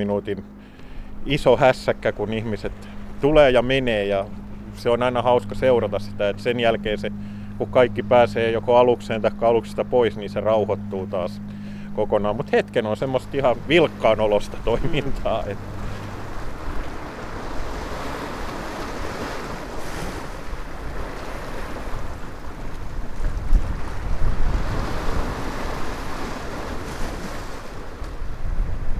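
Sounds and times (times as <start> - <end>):
speech: 0.0 - 15.8
sea waves washing ashore: 0.0 - 28.9.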